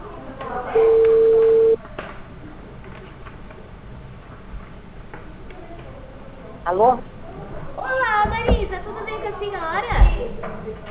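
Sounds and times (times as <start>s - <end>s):
faint noise: 0.0s - 10.8s
ringback tone of a telephone call waiting to be answered: 0.7s - 1.8s
speech: 6.8s - 7.1s.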